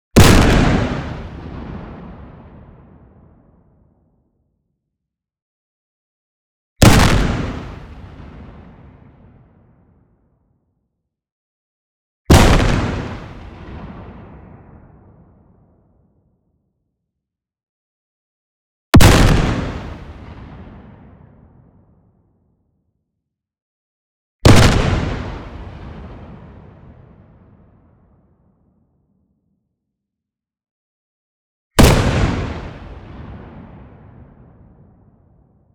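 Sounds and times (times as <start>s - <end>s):
long explosion from a car crusher: 0.2s - 3.1s, 6.8s - 9.4s, 12.3s - 15.3s, 19.0s - 21.3s, 24.5s - 26.7s, 31.8s - 34.9s.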